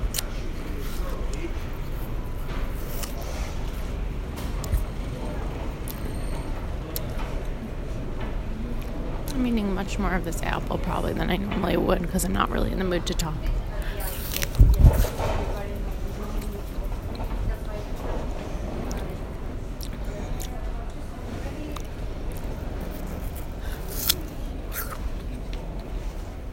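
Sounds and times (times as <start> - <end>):
faint voices: 0.0 - 26.5
train clanks and squeals: 5.0 - 7.3
speech: 9.5 - 13.6.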